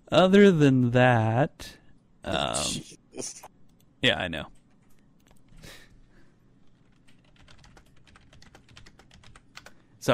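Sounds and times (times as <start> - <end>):
speech: 0.1 - 4.6
typing on a computer keyboard: 6.7 - 9.8.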